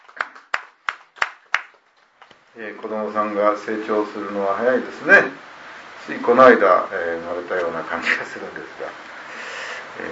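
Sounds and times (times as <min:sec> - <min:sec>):
hand clapping for a child's birthday: 0:00.0 - 0:01.9
speech: 0:02.6 - 0:05.5, 0:06.1 - 0:09.1.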